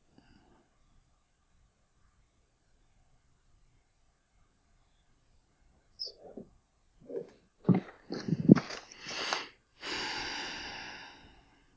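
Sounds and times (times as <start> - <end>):
person breathing heavily: 7.7 - 11.7
long forceful exhale: 9.0 - 11.7.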